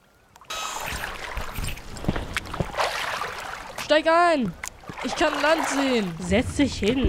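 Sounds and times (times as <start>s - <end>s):
broad loud watery wash of a rowboat: 0.0s - 7.0s
oars of a rowboat splashing: 0.4s - 7.0s
speech: 3.9s - 7.0s.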